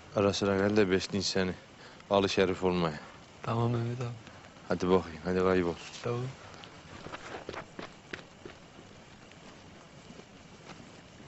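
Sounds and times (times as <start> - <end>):
steady breezy noise: 0.0 - 11.2
speech: 0.2 - 6.4
faint footsteps walking across grass: 6.7 - 11.2.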